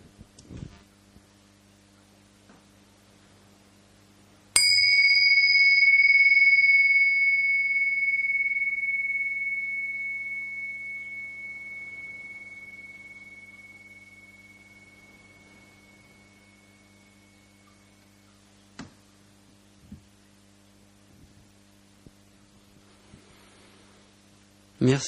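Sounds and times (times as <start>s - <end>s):
faint low hum: 0.0s - 25.0s
single bell struck and ringing: 4.6s - 18.2s
speech: 24.8s - 25.0s.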